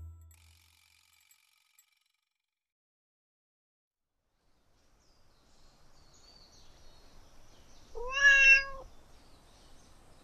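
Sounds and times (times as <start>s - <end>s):
cat meowing: 8.0s - 8.9s.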